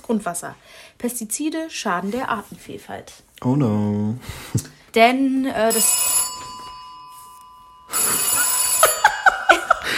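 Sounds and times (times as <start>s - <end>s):
speech: 0.1s - 6.3s
home telephone ringing with a bright electronic trill: 5.6s - 9.9s.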